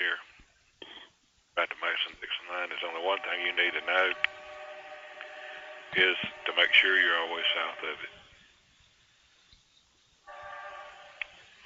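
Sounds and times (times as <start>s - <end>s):
train rumbling roar with faint tonal whine: 2.4s - 8.6s, 10.3s - 11.6s
speech: 3.2s - 4.3s, 5.9s - 8.2s.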